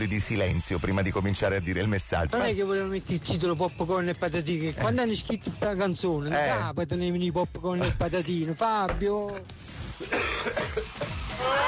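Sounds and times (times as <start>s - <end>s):
speech: 0.0s - 10.8s
person with a cough coughing: 10.0s - 11.0s.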